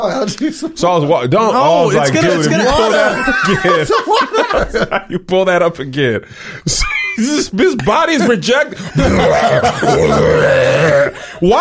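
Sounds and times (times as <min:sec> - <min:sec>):
speech: 0:00.0 - 0:11.5
laughter: 0:02.0 - 0:05.3, 0:06.7 - 0:11.5
long loud burp after drinking carbonated energy drink: 0:09.0 - 0:11.2.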